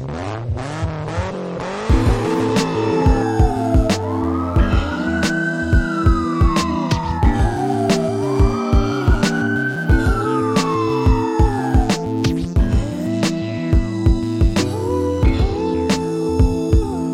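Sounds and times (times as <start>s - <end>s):
car exhaust mufflers roaring: 0.0s - 14.6s
engine whine: 0.0s - 17.0s.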